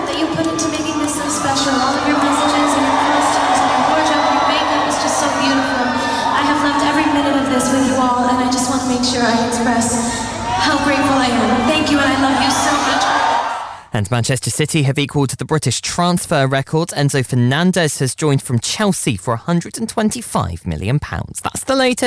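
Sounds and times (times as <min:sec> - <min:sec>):
large arena crowd cheering and screaming at a concert: 0:00.0 - 0:08.6, 0:09.6 - 0:13.9
speech: 0:14.0 - 0:22.0.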